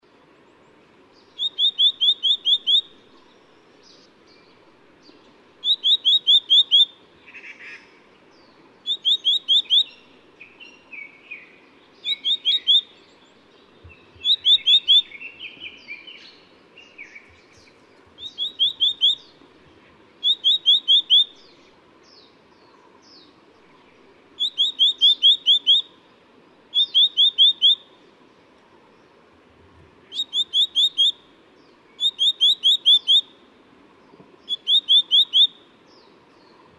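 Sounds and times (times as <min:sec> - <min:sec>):
black-naped monarch calling: 0:01.2 - 0:26.1, 0:26.7 - 0:28.1, 0:30.0 - 0:33.5, 0:34.1 - 0:36.7.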